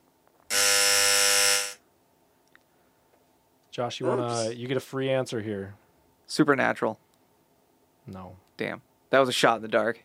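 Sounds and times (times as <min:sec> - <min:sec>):
loud harsh electronic quiz game buzzer: 0:00.5 - 0:01.8
speech: 0:03.8 - 0:07.0, 0:08.0 - 0:10.0.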